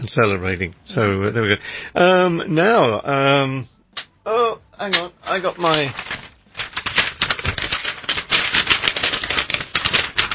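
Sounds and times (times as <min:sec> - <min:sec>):
speech: 0:00.1 - 0:06.2
sheet of paper with writing crinkling and rustling: 0:04.9 - 0:10.3.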